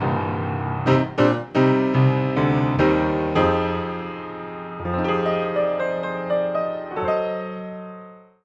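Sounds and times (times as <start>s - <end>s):
piano with high strings: 0.0s - 8.4s.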